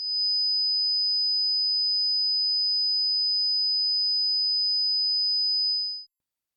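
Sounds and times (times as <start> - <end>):
high-pitched pure sine-wave test tone: 0.0 - 6.1.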